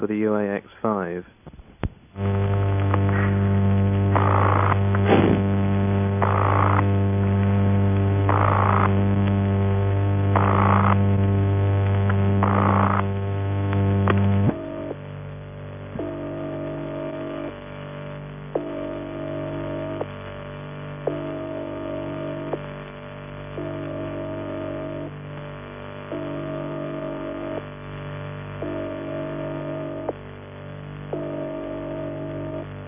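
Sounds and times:
speech: 0.0s - 1.6s
harsh buzzy telephone exchange ringing tone built from mains hum pulses: 2.2s - 15.0s, 15.9s - 17.6s, 18.6s - 20.1s, 21.1s - 22.6s, 23.6s - 25.1s, 26.1s - 27.6s, 28.6s - 30.1s, 31.1s - 32.8s
steady drone: 2.2s - 32.8s.

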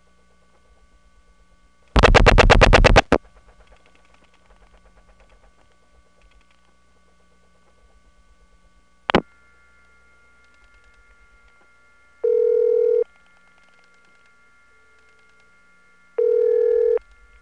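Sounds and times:
thin whine of a resonant telephone trunk line during dialing: 0.0s - 17.4s
faint steady hum of a resonant telephone trunk line: 1.9s - 3.2s, 9.1s - 17.4s
loud harsh tone burst on a telephone trunk line: 2.0s - 3.2s.

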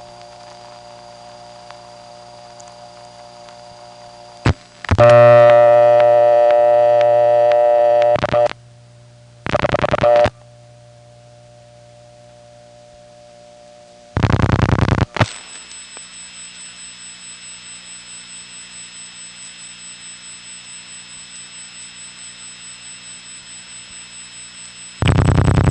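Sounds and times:
steady low telephone line hum: 0.0s - 25.6s
buzzy harmonic tone of a Bell System N3 analog carrier trunk: 4.2s - 8.5s, 9.9s - 25.6s
loud telephone tone bursts during dialing: 4.3s - 8.6s, 9.5s - 10.4s, 14.1s - 25.6s.

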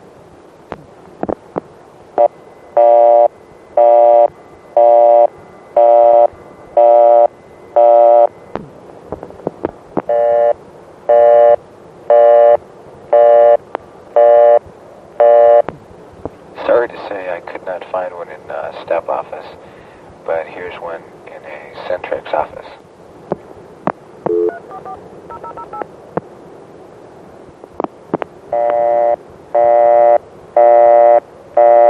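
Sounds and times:
telephone line noise: 0.0s - 31.8s
Bell System crossbar exchange busy tone beeps: 2.2s - 8.6s, 10.1s - 13.6s, 14.2s - 14.6s, 15.2s - 15.6s, 24.3s - 25.9s, 28.5s - 31.8s
person speaking briefly: 16.6s - 22.8s.

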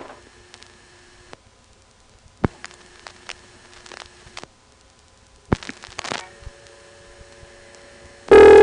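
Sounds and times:
steady low hum: 7.2s - 8.6s
loud buzzing telephone test tone burst: 8.3s - 8.6s.

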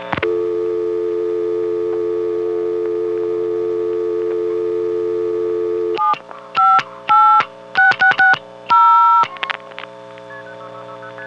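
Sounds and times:
telephone exchange signaling tones sending dialed digits: 0.3s - 9.3s.

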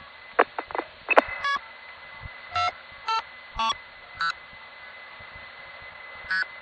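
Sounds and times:
non-standard telephone busy signal from an NX1 exchange: 0.5s - 1.6s, 2.5s - 4.4s, 6.3s - 6.5s
beeping bursts and chirps: 1.1s - 1.6s, 2.5s - 4.3s
steady high tone: 1.1s - 1.7s, 2.5s - 4.4s, 6.1s - 6.5s.

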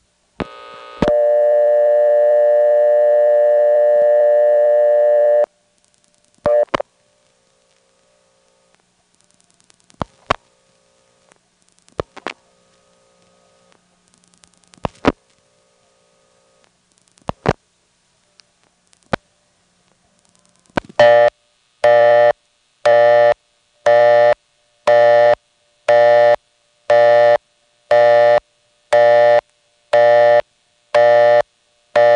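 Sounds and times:
long steady telephone line tone: 0.4s - 5.5s, 6.5s - 6.8s, 21.0s - 30.4s, 31.0s - 32.1s
local telephone exchange busy signal: 1.1s - 5.5s.

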